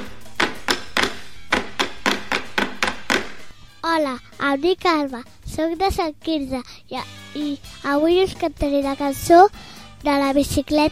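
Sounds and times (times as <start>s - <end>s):
stick striking a wooden caga tio log: 0.0s - 3.5s
speech: 4.0s - 10.9s.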